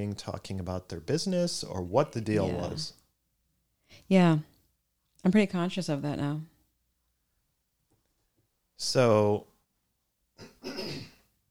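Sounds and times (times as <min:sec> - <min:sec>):
speech: 0:00.0 - 0:03.0, 0:04.0 - 0:04.5, 0:05.2 - 0:06.5, 0:08.8 - 0:09.5
person clearing throat: 0:10.4 - 0:11.2.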